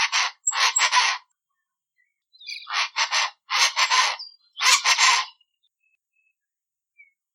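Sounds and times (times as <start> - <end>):
aracua de asas azuis calling: 0.2 - 1.2, 2.3 - 5.3.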